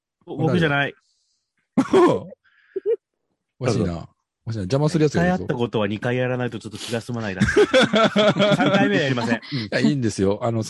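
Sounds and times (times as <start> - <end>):
speech: 0.3 - 1.1, 1.8 - 3.0, 3.6 - 10.6
loud throat clearing: 1.8 - 2.4
laughter: 7.2 - 10.0.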